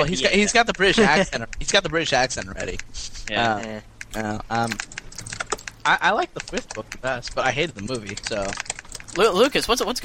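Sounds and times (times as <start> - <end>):
speech: 0.0 - 10.0
typing on a computer keyboard: 0.4 - 2.9, 4.0 - 9.8.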